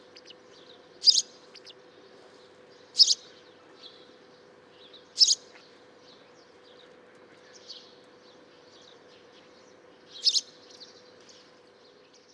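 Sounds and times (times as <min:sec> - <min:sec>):
House sparrow Passer domesticus chirping: 0:00.0 - 0:01.8, 0:02.7 - 0:03.4, 0:04.9 - 0:05.6, 0:09.6 - 0:11.4.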